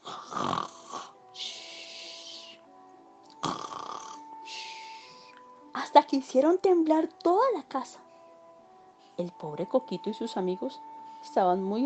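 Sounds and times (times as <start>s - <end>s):
rasping snores: 0.0s - 2.6s, 3.4s - 5.4s
speech: 6.0s - 8.0s, 9.2s - 11.8s.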